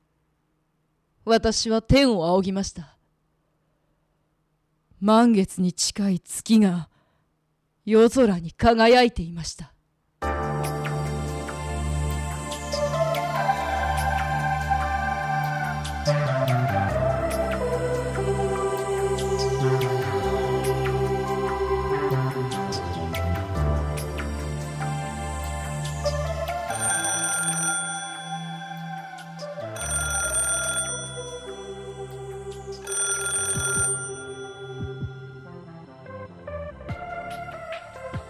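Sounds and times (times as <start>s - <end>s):
speech: 1.2s - 3.0s, 5.0s - 6.9s, 7.9s - 9.7s
music: 10.2s - 38.2s
telephone ringing one evening: 26.8s - 29.0s, 29.8s - 31.8s, 32.8s - 35.5s.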